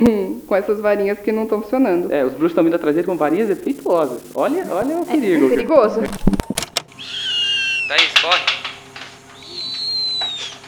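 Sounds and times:
speech: 0.0 - 6.3, 7.9 - 8.6
owl call as a high thin whistling tone: 6.9 - 8.2, 9.3 - 10.6.

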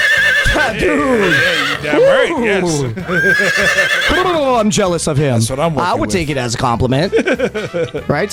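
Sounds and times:
person vocally imitating a horse's whinny: 0.0 - 2.2, 3.0 - 4.3
laughter: 0.5 - 4.6, 7.0 - 8.1
speech: 0.7 - 8.3.

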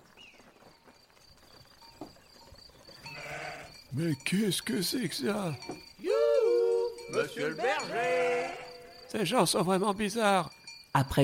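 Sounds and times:
scattered hoof-like clatter: 0.0 - 9.6
farm noise: 1.8 - 10.5
sheep bleating outdoors: 3.1 - 3.8, 5.0 - 9.2
speech: 4.0 - 5.9, 7.1 - 11.2.

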